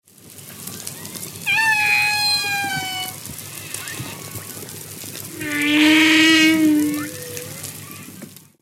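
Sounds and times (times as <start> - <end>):
humpback whale song units of long tonal moans: 1.5 - 3.2, 5.3 - 7.7.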